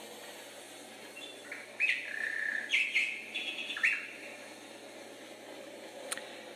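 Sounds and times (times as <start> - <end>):
steady hiss: 0.0 - 6.5
nightingale singing whistled and trilling phrases: 1.2 - 4.3.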